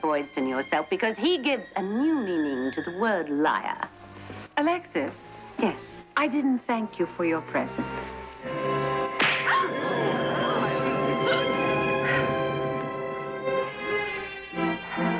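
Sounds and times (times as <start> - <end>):
speech: 0.0 - 4.0, 4.6 - 8.6
steady tonal background: 0.0 - 15.1
slap across the face: 9.2 - 9.6.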